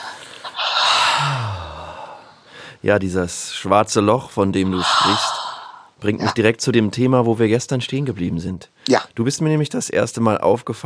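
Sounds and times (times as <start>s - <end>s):
deep breathing in and out: 0.0s - 2.8s, 4.6s - 6.2s
speech: 2.8s - 5.4s, 6.0s - 10.8s.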